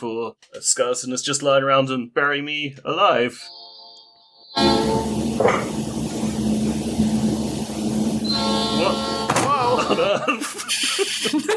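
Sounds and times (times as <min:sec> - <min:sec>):
speech: 0:00.0 - 0:03.7, 0:04.6 - 0:06.2, 0:08.8 - 0:09.2, 0:09.9 - 0:11.5
train horn blast: 0:04.5 - 0:09.9
laughter: 0:09.4 - 0:11.5.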